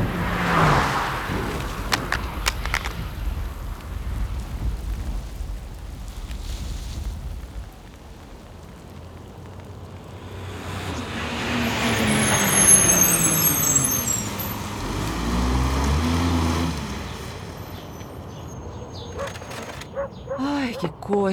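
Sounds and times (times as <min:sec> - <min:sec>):
garbage truck heavy engine rumbling: 0:00.0 - 0:06.0, 0:07.9 - 0:21.3
road noise: 0:00.0 - 0:21.3
garbage truck air brakes squealing and hissing: 0:11.7 - 0:14.9.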